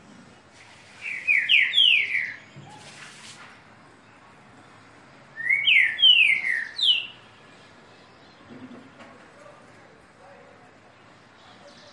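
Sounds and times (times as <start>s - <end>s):
Green-winged saltator song of clear falling whistles: 0.9s - 3.2s, 5.4s - 7.3s.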